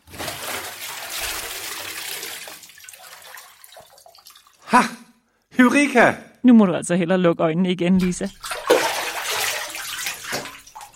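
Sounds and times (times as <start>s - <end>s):
water sloshing as a person lowers into a full bathtub: 0.0s - 4.7s, 8.0s - 10.9s
speech: 4.7s - 5.0s, 5.6s - 8.5s.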